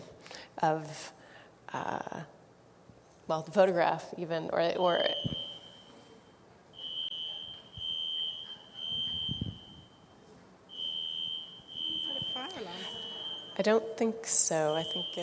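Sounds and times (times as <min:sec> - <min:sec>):
speech: 0:00.6 - 0:02.4, 0:03.3 - 0:05.4, 0:13.6 - 0:15.2
electronic alarm beeping: 0:04.8 - 0:06.1, 0:06.8 - 0:15.2.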